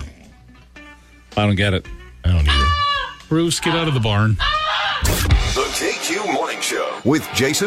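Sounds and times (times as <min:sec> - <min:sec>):
speech: 0:01.4 - 0:02.6, 0:03.3 - 0:07.6
person imitating goose honks: 0:02.3 - 0:03.9.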